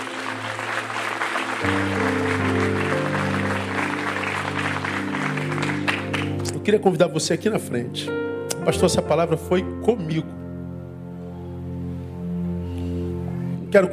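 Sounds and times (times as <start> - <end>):
large crowd applauding: 0.0 - 6.6
sustained keyboard or organ chords: 0.0 - 13.9
speech: 6.7 - 10.4, 13.7 - 13.9.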